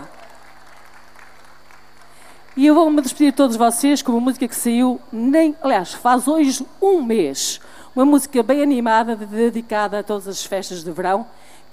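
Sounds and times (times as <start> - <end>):
audience applause for presenters: 0.0 - 3.5
speech: 2.6 - 11.7.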